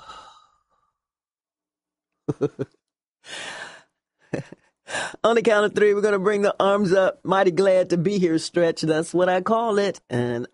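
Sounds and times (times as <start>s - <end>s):
group exhaling slowly during a deep-breathing exercise: 0.0s - 0.8s
speech: 2.3s - 2.8s, 5.2s - 10.5s.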